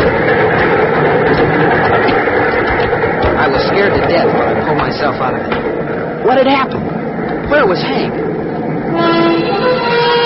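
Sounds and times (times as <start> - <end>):
rushing wind: 0.0 - 10.2
speeding train roaring: 0.0 - 10.2
speech: 6.3 - 8.3.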